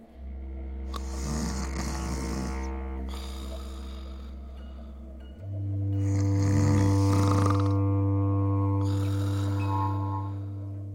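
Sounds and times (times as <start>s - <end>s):
low droning buzz: 0.0s - 10.9s
person snoring: 0.9s - 5.1s, 5.9s - 8.0s, 8.6s - 10.9s.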